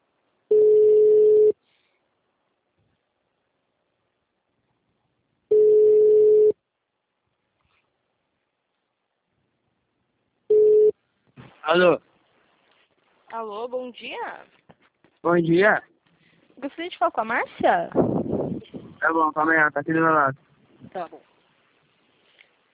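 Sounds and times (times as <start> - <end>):
ringback tone on a telephone line after a number is dialled: 0.5 - 1.6, 5.5 - 6.6, 10.5 - 10.9
speech: 11.7 - 12.1, 13.3 - 14.6, 15.2 - 15.9, 16.6 - 21.3.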